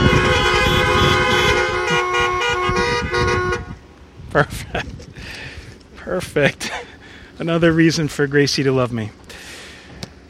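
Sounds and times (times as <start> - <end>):
car horns honking: 0.0 - 3.9
speech: 4.4 - 4.9, 6.1 - 9.4.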